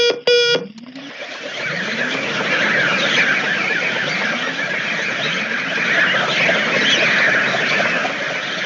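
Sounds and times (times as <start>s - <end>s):
brief beeping tone: 0.0s - 1.0s
bats circling a spaceship heard through outside microphones: 0.0s - 8.1s.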